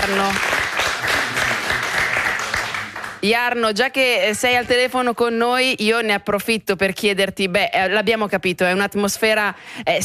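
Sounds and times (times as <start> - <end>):
speech: 0.0 - 1.1, 3.2 - 10.0
applause of many clapping hands: 0.0 - 3.2.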